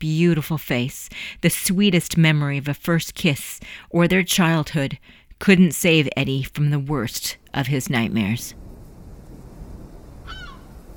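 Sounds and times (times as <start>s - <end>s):
speech: 0.0s - 8.6s
low rumble of wind or surf: 8.5s - 10.9s
seagull squawk: 10.2s - 10.7s.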